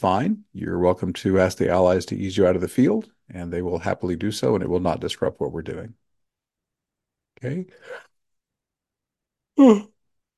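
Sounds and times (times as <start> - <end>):
speech: 0.0 - 6.0, 7.4 - 8.1, 9.6 - 9.9
short yawn: 9.6 - 10.0.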